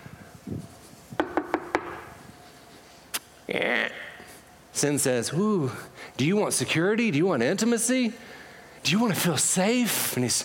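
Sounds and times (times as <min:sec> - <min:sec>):
knocking on a wooden door: 0:01.2 - 0:02.1
speech: 0:03.5 - 0:04.0, 0:04.8 - 0:10.4.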